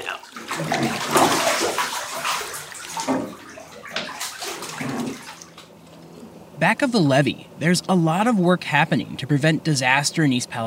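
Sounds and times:
water sloshing and splashing in a bathtub as someone climbs out: 0.0s - 5.9s
speech: 0.6s - 1.2s, 6.6s - 10.6s.

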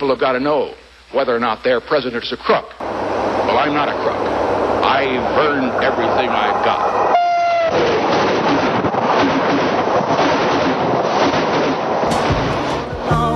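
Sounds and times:
speech: 0.0s - 2.9s, 3.6s - 8.0s
train locomotive roaring past: 2.8s - 13.3s.

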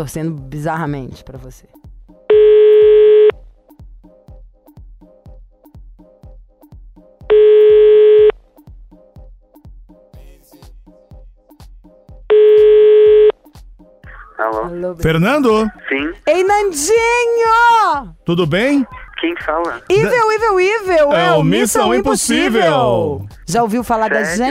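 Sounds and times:
speech: 0.0s - 1.8s, 14.7s - 24.4s
rhythmic ticking beat: 0.2s - 24.4s
ringback tone of an outgoing telephone call: 2.3s - 3.3s, 7.3s - 8.4s, 12.3s - 13.3s.

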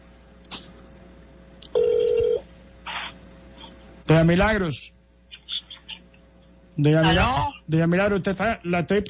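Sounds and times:
short electronic tones of a cell phone call being dialed: 1.8s - 2.4s
speech: 4.1s - 5.0s, 6.8s - 9.0s.

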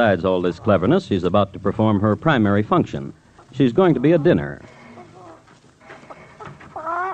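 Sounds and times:
speech: 0.0s - 4.8s
chicken clucking: 0.0s - 7.1s
chicken squawk: 3.9s - 7.1s.

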